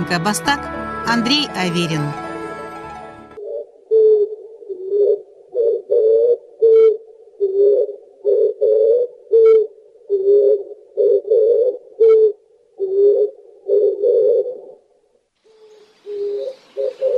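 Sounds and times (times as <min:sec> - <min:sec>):
speech: 0:00.1 - 0:02.2
Oriental turtle dove cooing: 0:03.4 - 0:17.1.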